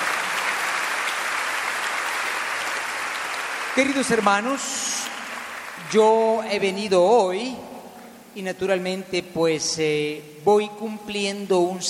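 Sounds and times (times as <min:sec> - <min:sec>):
large crowd clapping: 0:00.0 - 0:06.7
speech: 0:03.8 - 0:05.2, 0:05.8 - 0:07.7, 0:08.4 - 0:11.8.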